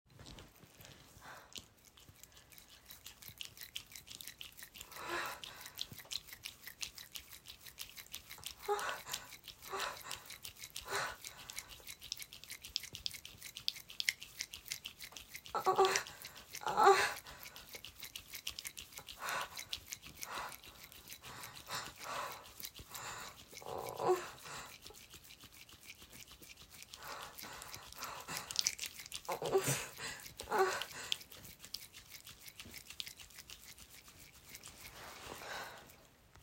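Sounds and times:
wet sounds: 0.1 - 36.4.

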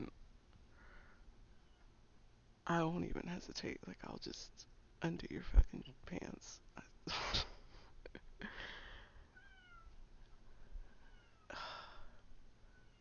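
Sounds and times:
speech: 2.7 - 7.4
cat meowing: 9.3 - 10.0, 11.0 - 11.5.

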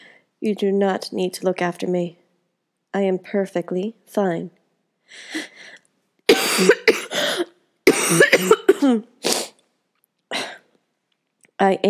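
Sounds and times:
speech: 0.4 - 2.2, 2.9 - 5.8, 6.6 - 7.4, 8.1 - 9.1, 11.6 - 11.8
person coughing: 6.3 - 9.1.

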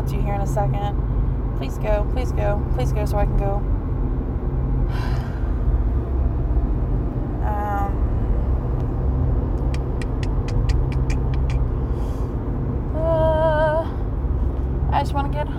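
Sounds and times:
heavy truck traffic rumbling: 0.0 - 15.5
speech: 0.1 - 3.8, 4.9 - 5.2, 15.0 - 15.5
rapid ticking clicks: 9.6 - 11.7.

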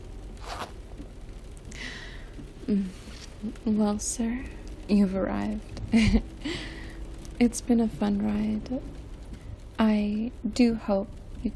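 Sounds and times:
soft hiss: 0.0 - 11.5
clothing zipper being zipped up: 0.4 - 0.8
speech: 2.7 - 6.6, 7.4 - 9.0, 9.8 - 11.5.

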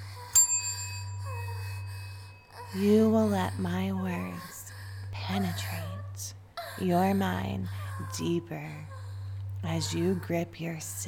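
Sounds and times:
steady low hum: 0.0 - 11.0
small bell struck: 0.4 - 1.2
speech: 2.7 - 4.5, 5.3 - 9.0, 9.6 - 11.0.

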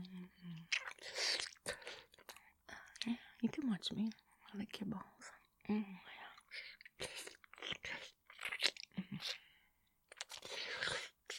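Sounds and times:
chewing food: 0.5 - 3.1, 6.4 - 9.4, 10.1 - 11.3
speech: 3.1 - 6.1.

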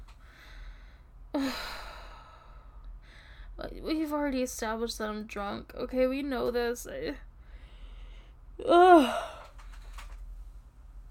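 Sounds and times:
speech: 3.8 - 7.3, 8.6 - 9.3
person yawning: 8.6 - 9.5.

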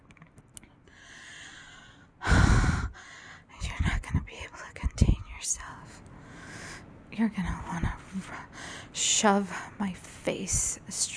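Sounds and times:
heavy breathing close to the microphone: 0.9 - 3.5, 8.4 - 9.0
speech: 7.2 - 11.1.

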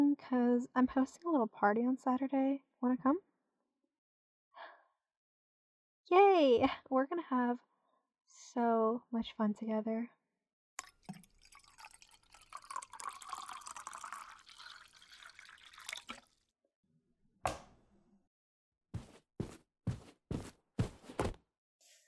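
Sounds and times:
speech: 0.2 - 3.3, 6.1 - 7.7, 8.3 - 10.2
water pouring: 10.8 - 16.4
sharp footsteps: 19.0 - 21.4.

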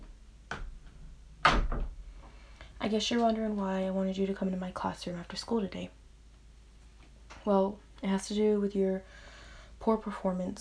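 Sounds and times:
classroom door shutting: 1.4 - 2.0
speech: 2.9 - 6.0, 7.4 - 9.2, 9.8 - 10.6.

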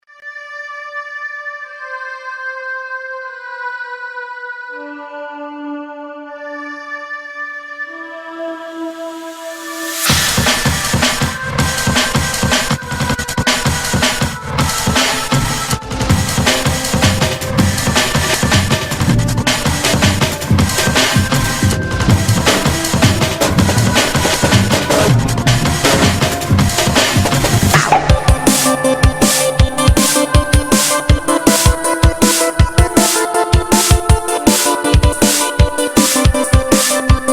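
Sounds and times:
pop drum and bass music: 8.6 - 37.3.

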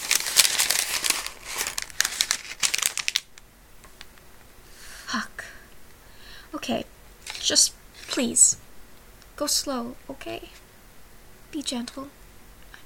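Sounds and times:
paper crinkling and rustling: 0.0 - 4.1
speech: 5.1 - 5.3, 6.5 - 8.6, 9.4 - 10.6, 11.5 - 12.2.

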